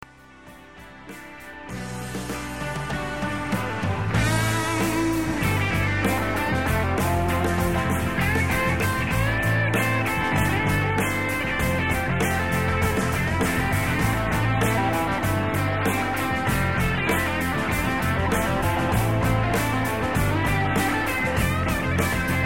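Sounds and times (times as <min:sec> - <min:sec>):
solo guitar: 0:00.2 - 0:22.4.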